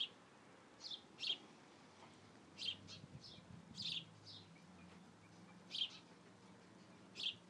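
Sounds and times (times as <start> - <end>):
soft outdoor hum: 0.0 - 7.4
baby birds chirping in a nest in a house corner in a garden: 0.8 - 1.4, 2.6 - 6.2, 6.8 - 7.4.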